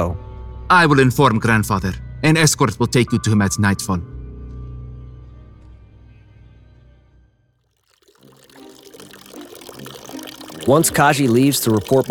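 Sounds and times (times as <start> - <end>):
speech: 0.0 - 4.1, 10.6 - 12.0
water pouring with deep gurgle into bath: 7.8 - 12.0.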